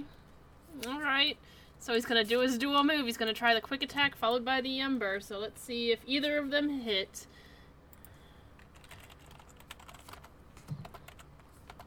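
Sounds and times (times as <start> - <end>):
speech: 0.8 - 7.4
rapid typing on a computer keyboard: 8.6 - 11.8.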